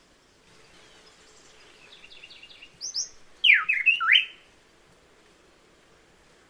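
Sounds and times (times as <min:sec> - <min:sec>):
buff-breasted wren singing: 0:01.6 - 0:04.5.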